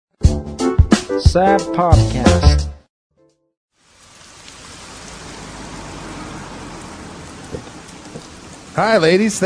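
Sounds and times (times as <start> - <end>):
speech: 1.1 - 2.7, 8.8 - 9.4
steady rain falling: 3.8 - 9.4.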